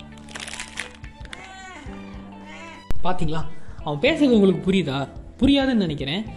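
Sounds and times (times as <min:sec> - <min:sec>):
peanut candy wrapper crinkled and crushed: 0:00.0 - 0:01.5
cat meowing insistently: 0:01.3 - 0:02.9
speech: 0:03.0 - 0:06.3.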